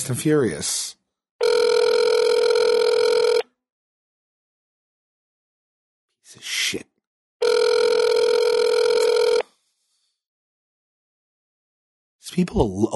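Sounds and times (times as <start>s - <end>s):
speech: 0.0s - 1.0s, 6.3s - 6.9s, 12.4s - 12.9s
ringback tones of an outgoing phone call: 1.4s - 3.5s, 7.4s - 9.4s.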